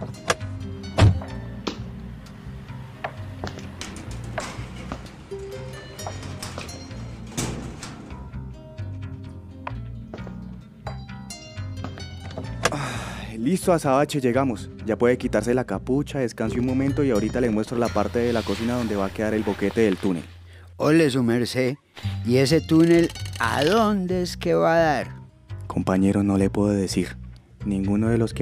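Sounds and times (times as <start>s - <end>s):
pickup truck engine rumbling as it rolls into a house parking area: 0.0s - 13.1s
speech: 13.4s - 28.3s.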